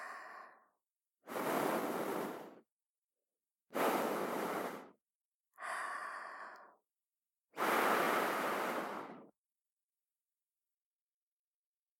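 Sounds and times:
soft breaths blown into the ear: 0:01.3 - 0:02.6, 0:03.7 - 0:04.9, 0:07.6 - 0:09.3.

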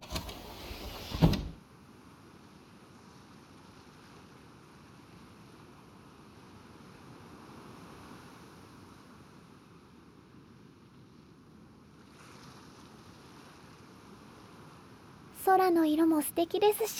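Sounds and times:
car power window lowering by the sea at dusk: 0:00.0 - 0:01.6
speech: 0:15.4 - 0:16.9.

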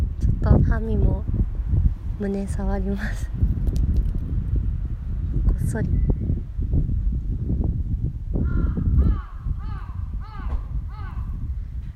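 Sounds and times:
constant noisy rumbling background: 0:00.0 - 0:11.9
speech: 0:00.8 - 0:01.4, 0:02.2 - 0:03.5, 0:05.7 - 0:06.2
crow cawing near a horse: 0:08.4 - 0:11.4.

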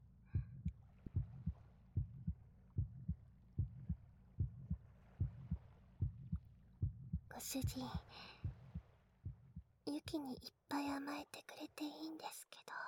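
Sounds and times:
heartbeat thumping: 0:00.4 - 0:10.2
speech: 0:07.4 - 0:08.5, 0:09.9 - 0:12.8.

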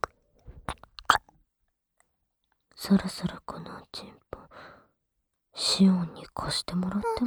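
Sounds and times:
gum being chewed with wet sticky clicks and squelches: 0:00.0 - 0:01.3
speech: 0:02.8 - 0:04.8, 0:05.6 - 0:07.2.

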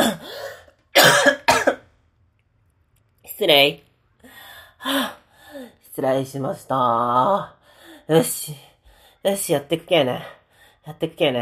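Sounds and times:
person clearing throat: 0:01.0 - 0:01.8
speech: 0:03.4 - 0:03.8, 0:04.8 - 0:11.4.

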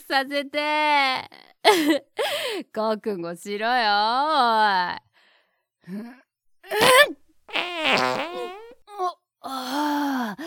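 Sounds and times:
speech: 0:00.0 - 0:05.1, 0:05.8 - 0:10.4
farts: 0:07.5 - 0:08.7.

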